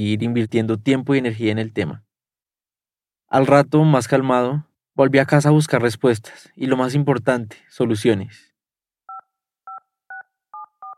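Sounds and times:
speech: 0.0s - 2.1s, 3.3s - 8.5s
telephone keypad dialing tones: 9.1s - 10.9s.

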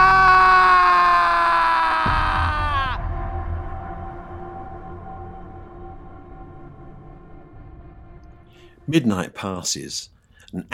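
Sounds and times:
man screaming in panic: 0.0s - 3.2s
speech: 8.9s - 10.7s.

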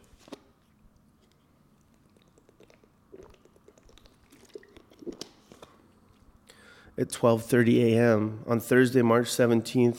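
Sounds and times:
sipping water: 1.0s - 7.0s
swallowing: 1.8s - 6.6s
speech: 7.0s - 9.9s.

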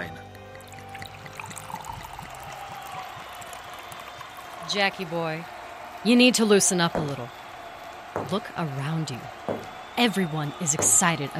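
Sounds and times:
liquid pouring into a glass: 0.0s - 4.7s
speech: 4.7s - 7.4s, 8.2s - 9.4s, 10.0s - 11.3s.

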